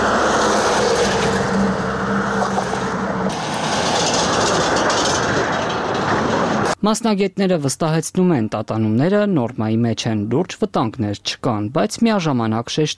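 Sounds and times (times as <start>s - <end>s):
heavy vehicle crossing a 640-metre road bridge with worn joints: 0.0s - 6.8s
rattling of worn bridge joints: 0.5s - 6.8s
speech: 6.8s - 12.9s.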